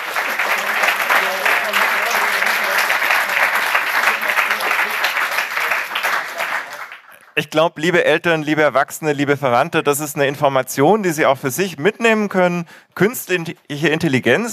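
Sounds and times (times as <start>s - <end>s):
audience applause for a team's first project: 0.0s - 7.4s
speech: 7.4s - 14.5s.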